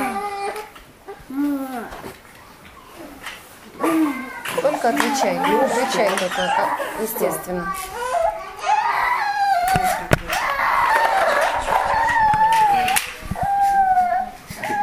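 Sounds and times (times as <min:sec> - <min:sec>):
child crying loudly: 0:00.0 - 0:00.7, 0:03.8 - 0:14.8
speech: 0:04.8 - 0:08.0.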